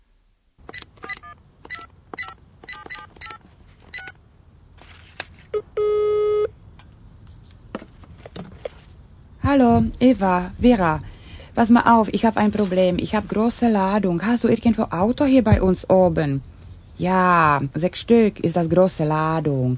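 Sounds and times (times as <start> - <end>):
low hum: 0.0 - 19.7
telephone ringing with a single short electronic tone: 1.1 - 4.1
speech: 9.5 - 19.7.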